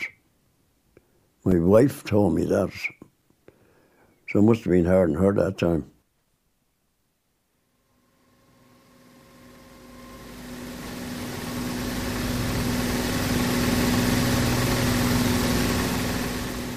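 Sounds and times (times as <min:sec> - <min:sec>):
speech: 0:01.4 - 0:03.0, 0:04.3 - 0:05.9
steady engine roar with low droning hum: 0:08.5 - 0:16.7.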